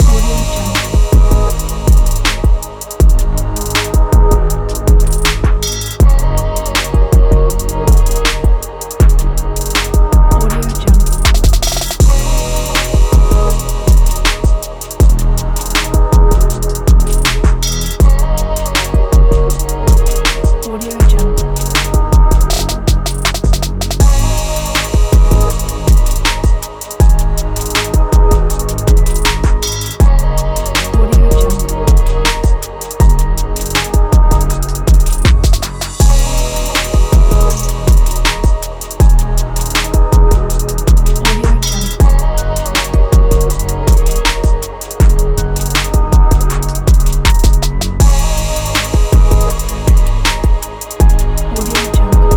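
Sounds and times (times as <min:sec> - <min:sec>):
sad emotional hip hop music: 0:00.0 - 0:52.3.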